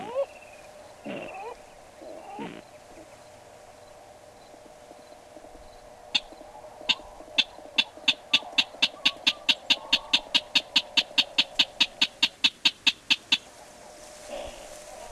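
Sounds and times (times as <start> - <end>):
steady background hum: 0.0 - 15.1
Lewin's rail giving sharp clicking notes: 6.2 - 13.5.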